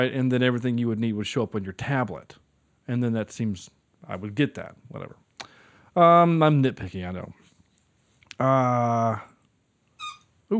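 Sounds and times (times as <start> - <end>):
speech: 0.0 - 5.2, 6.0 - 7.4, 8.4 - 9.3
dog's squeaky toy high-pitched squeak: 10.0 - 10.4.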